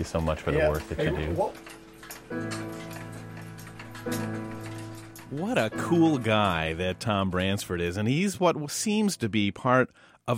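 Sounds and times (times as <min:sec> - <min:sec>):
speech: 0:00.0 - 0:02.7, 0:04.0 - 0:04.4, 0:05.3 - 0:10.3
several clocks ticking in a clock repairer's workshop: 0:00.0 - 0:08.6.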